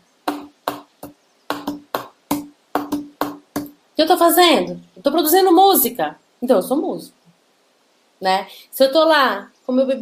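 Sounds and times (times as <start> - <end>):
hand tapping a rhythmic pattern on a wooden table: 0.3 - 3.7
speech: 4.0 - 7.2, 8.2 - 10.0.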